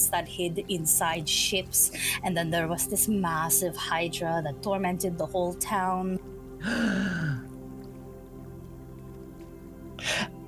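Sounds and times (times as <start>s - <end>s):
speech: 0.0s - 7.4s
person gasping: 6.6s - 7.4s, 10.0s - 10.3s.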